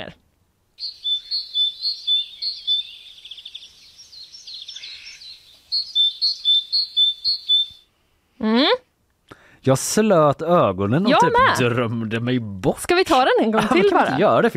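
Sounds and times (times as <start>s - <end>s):
great tit singing: 0.8s - 7.9s
speech: 9.6s - 14.5s
laughter: 13.4s - 14.5s.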